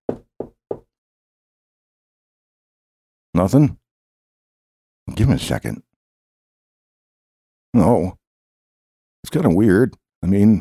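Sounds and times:
firm knocking on a door: 0.1 - 0.9
speech: 3.4 - 3.8, 5.1 - 5.9, 7.7 - 8.2, 9.2 - 10.6.

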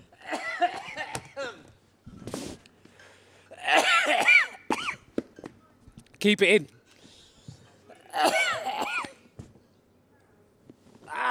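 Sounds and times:
person with something caught in the throat clearing it and coughing: 0.2 - 1.7, 3.6 - 5.1, 7.9 - 9.3
speech: 6.2 - 6.8.

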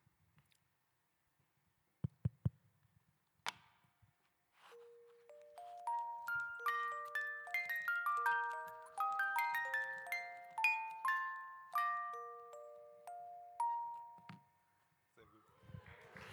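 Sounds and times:
music box melody played against a resonating wooden body: 4.6 - 14.8.

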